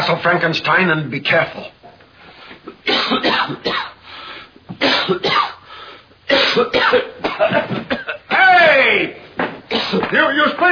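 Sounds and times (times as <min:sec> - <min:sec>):
speech: 0:00.1 - 0:01.8, 0:02.8 - 0:03.7, 0:04.8 - 0:05.4, 0:06.5 - 0:07.9, 0:09.9 - 0:10.6
person clearing throat: 0:02.7 - 0:04.0, 0:04.7 - 0:05.6, 0:06.3 - 0:08.3, 0:09.7 - 0:10.1
person coughing: 0:02.8 - 0:04.0, 0:04.7 - 0:05.6, 0:06.3 - 0:08.3, 0:09.7 - 0:10.1.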